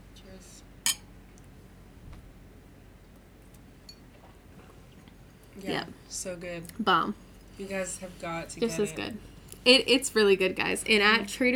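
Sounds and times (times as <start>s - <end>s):
faint low hum: 0.0s - 11.5s
glasses clinking in a toast: 0.8s - 1.1s, 3.8s - 4.2s
speech: 5.6s - 11.5s.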